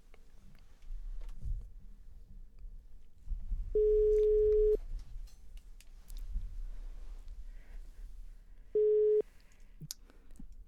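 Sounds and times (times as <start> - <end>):
telephone ringback tone while a call is placed: 3.8 - 4.8, 8.8 - 9.2.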